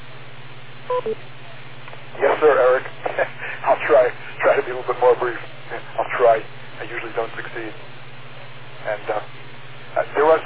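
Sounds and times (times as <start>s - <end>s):
low steady hum: 0.0s - 10.4s
short telephone keypad-style electronic beeps: 0.9s - 1.2s
speech: 0.9s - 1.4s, 2.2s - 7.9s, 8.8s - 9.4s, 10.0s - 10.4s.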